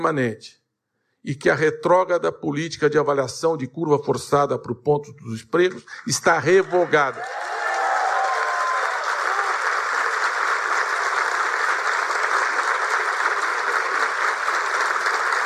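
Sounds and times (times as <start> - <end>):
speech: 0.0 - 0.6, 1.2 - 7.5
large crowd applauding after an announcement: 6.3 - 15.4.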